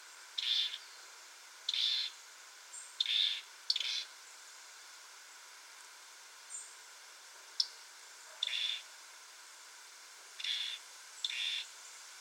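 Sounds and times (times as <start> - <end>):
European robin (Erithacus rubecula) calling: 0.4 - 0.9, 1.7 - 4.1, 7.6 - 8.9, 10.4 - 11.7.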